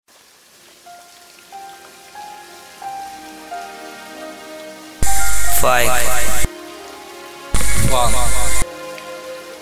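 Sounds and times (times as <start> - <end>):
loud dense rain: 0.1 - 9.6
faint hum: 5.0 - 6.5, 7.6 - 8.6
faint voice-like tone: 5.0 - 6.5, 7.6 - 8.6
speech: 5.6 - 6.4, 7.9 - 8.5.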